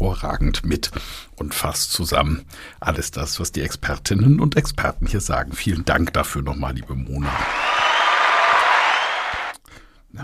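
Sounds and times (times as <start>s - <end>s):
speech: 0.2s - 7.9s
crowd applauding: 7.2s - 9.6s.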